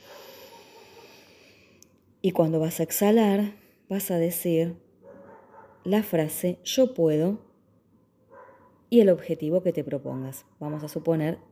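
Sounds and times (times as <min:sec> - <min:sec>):
deep nasal inhale: 0:00.0 - 0:01.8
speech: 0:02.2 - 0:04.8, 0:05.8 - 0:07.5, 0:08.9 - 0:11.5.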